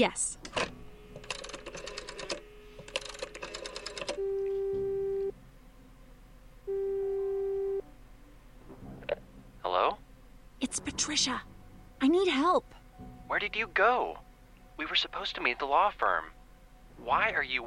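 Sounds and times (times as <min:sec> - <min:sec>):
speech: 0:00.0 - 0:00.7, 0:11.1 - 0:14.2, 0:14.8 - 0:16.4, 0:17.0 - 0:17.6
telephone ringback tone: 0:01.2 - 0:05.3, 0:06.7 - 0:07.8.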